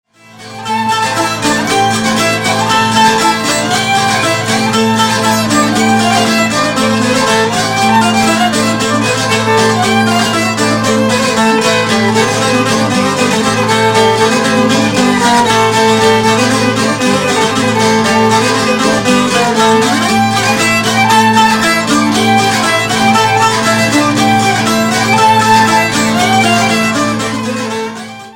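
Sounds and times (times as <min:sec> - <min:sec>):
folk dance tune: 0:00.1 - 0:28.3.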